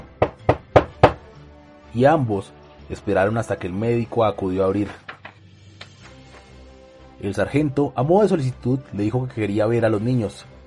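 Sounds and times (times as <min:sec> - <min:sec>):
firm knocks on a wooden door: 0:00.0 - 0:01.2
speech: 0:01.9 - 0:05.0, 0:07.2 - 0:10.5.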